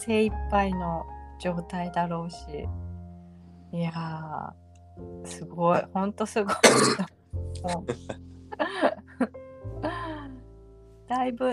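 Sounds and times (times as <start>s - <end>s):
speech: 0.0s - 2.9s, 3.7s - 10.1s, 11.1s - 11.5s
sharp cough: 6.5s - 7.1s
short rough throat-clearing: 6.6s - 7.1s
low vocal noises: 7.6s - 8.2s.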